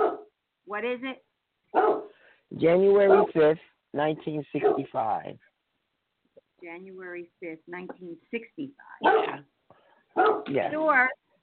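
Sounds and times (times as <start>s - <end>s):
dog barking: 0.0s - 0.3s, 1.7s - 2.2s, 3.0s - 3.5s, 4.5s - 5.0s, 9.0s - 9.4s, 10.1s - 10.7s
speech: 0.7s - 5.5s, 6.6s - 9.5s, 10.2s - 11.2s.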